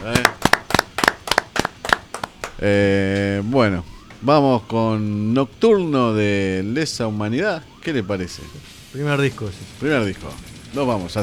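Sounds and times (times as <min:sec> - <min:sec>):
people clapping for a guest on an extreme metal music show: 0:00.0 - 0:02.8
speech: 0:02.6 - 0:11.2.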